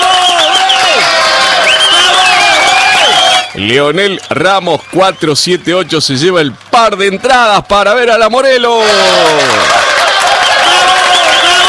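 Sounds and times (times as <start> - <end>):
shrill whistles from an audience: 0.0 - 5.9, 10.2 - 11.6
audience applause: 0.0 - 7.1, 8.8 - 11.6
speech: 3.6 - 9.8.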